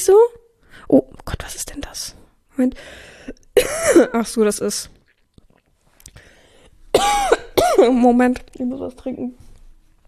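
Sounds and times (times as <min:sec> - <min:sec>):
speech: 0:00.0 - 0:05.0, 0:07.0 - 0:09.4
loud raspy cough: 0:03.6 - 0:04.1, 0:07.0 - 0:07.9.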